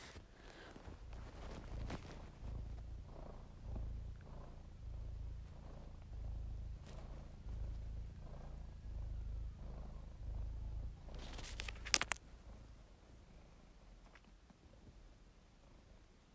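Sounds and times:
rustling or handling noise: 0:00.0 - 0:02.9, 0:11.1 - 0:12.3
cat purring: 0:00.0 - 0:16.3.

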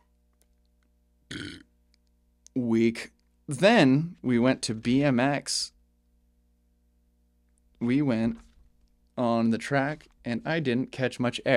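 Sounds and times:
loud gurgly burp: 0:01.3 - 0:01.7
speech: 0:02.6 - 0:05.8, 0:07.8 - 0:08.5, 0:09.2 - 0:11.5.

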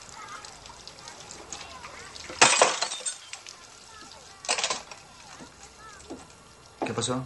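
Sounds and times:
low steady noise: 0:00.0 - 0:07.2
drinking glass shattering in a hand while being cleaned in a bathroom: 0:02.2 - 0:03.5, 0:04.4 - 0:05.5
glass clinking: 0:02.3 - 0:03.4.

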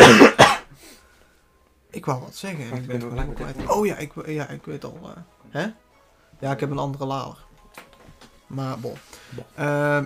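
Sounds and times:
loud coughs: 0:00.0 - 0:00.8
speech: 0:02.0 - 0:05.8, 0:06.4 - 0:07.9, 0:08.5 - 0:10.0.

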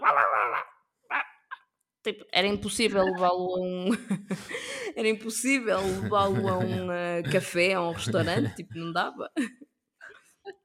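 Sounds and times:
person imitating a dog barking: 0:00.0 - 0:01.7, 0:05.8 - 0:06.9
speech: 0:02.0 - 0:09.6
laughter: 0:05.8 - 0:08.9.

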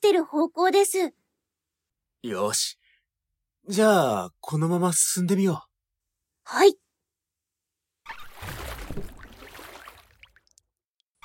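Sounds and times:
speech: 0:00.1 - 0:01.2, 0:02.2 - 0:02.8, 0:03.7 - 0:05.7, 0:06.5 - 0:06.8
oars rowing a small boat across a sea: 0:08.1 - 0:10.2
water drips and splashes: 0:08.1 - 0:11.2.

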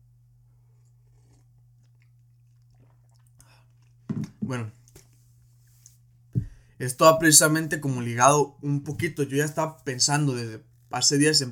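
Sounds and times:
person sipping coffee: 0:00.5 - 0:06.0
slurping and swallowing coffee: 0:00.7 - 0:04.4
sudden louder knock: 0:04.1 - 0:04.4
speech: 0:04.1 - 0:04.8, 0:06.8 - 0:11.4.

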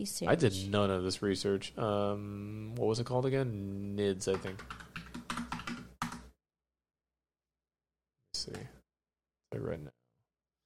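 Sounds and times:
speech: 0:00.0 - 0:04.8, 0:09.5 - 0:10.0
typing on a computer keyboard: 0:04.2 - 0:06.3.

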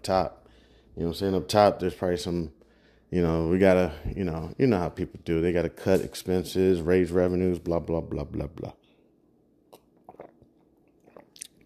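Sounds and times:
speech: 0:00.0 - 0:00.4, 0:01.0 - 0:08.8
sipping and swallowing Concord grape juice: 0:09.7 - 0:11.6.

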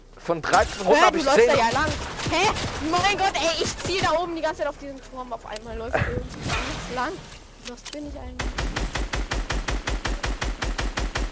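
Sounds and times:
speech: 0:00.2 - 0:08.6
automatic gunfire from a video game: 0:00.5 - 0:04.6, 0:08.0 - 0:11.3.

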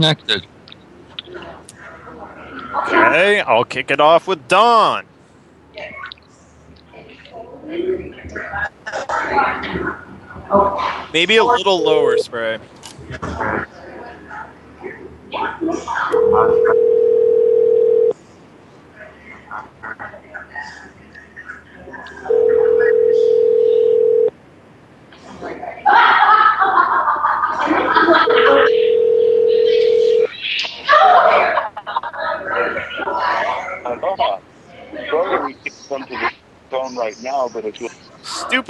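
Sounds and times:
speech: 0:00.0 - 0:00.6, 0:02.7 - 0:05.1, 0:07.7 - 0:13.8, 0:15.3 - 0:17.0, 0:33.8 - 0:38.6
telephone ringback tone of an unanswered call: 0:16.2 - 0:18.1, 0:22.3 - 0:24.3, 0:28.3 - 0:30.3
laughter: 0:25.7 - 0:28.7, 0:30.6 - 0:33.2.

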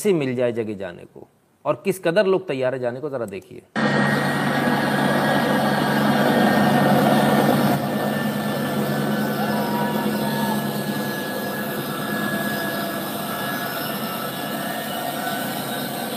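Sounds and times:
speech: 0:00.0 - 0:05.1
large US Air Force plane engines roaring: 0:03.8 - 0:16.1.

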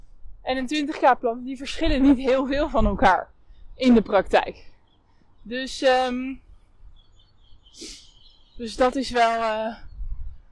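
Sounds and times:
birds chirping: 0:00.0 - 0:10.4
speech: 0:00.5 - 0:04.7, 0:05.4 - 0:06.4, 0:07.8 - 0:08.0, 0:08.6 - 0:09.9
breathy sneeze-like burst: 0:07.8 - 0:08.1.

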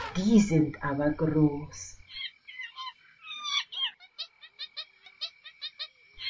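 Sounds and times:
speech: 0:00.2 - 0:02.0
monkeys chattering in the trees: 0:02.1 - 0:06.2
rapid run of short shrill monkey yelps: 0:02.1 - 0:06.2.

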